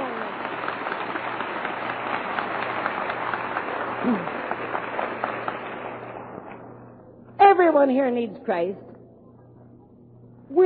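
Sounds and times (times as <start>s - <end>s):
large congregation clapping: 0.0s - 6.8s
speech: 4.0s - 4.4s, 7.8s - 8.9s.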